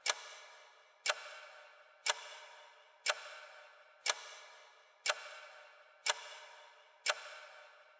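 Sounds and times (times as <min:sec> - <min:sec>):
clock second hand ticking with reverb: 0:00.0 - 0:07.9.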